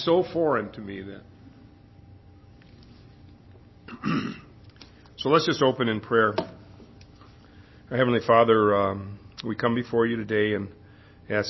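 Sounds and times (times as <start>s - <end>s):
speech: 0.0s - 1.4s, 4.0s - 4.5s, 5.2s - 6.5s, 7.9s - 11.4s
gruff throat clearing: 3.9s - 4.6s.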